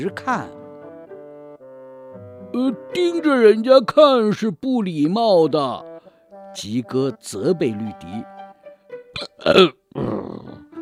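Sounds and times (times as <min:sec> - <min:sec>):
speech: 0:00.0 - 0:00.6, 0:02.5 - 0:05.9, 0:06.6 - 0:08.3, 0:09.2 - 0:09.8
long low belch from a creature with a full stomach: 0:09.2 - 0:10.7
throaty grunts from a creature: 0:09.2 - 0:10.7.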